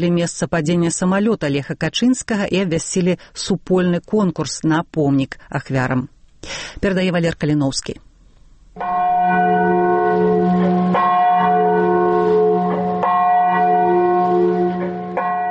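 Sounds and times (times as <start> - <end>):
speech: 0.0 - 8.1, 8.8 - 9.5
large memorial bell tolling in a forest near Smolensk: 8.8 - 15.4.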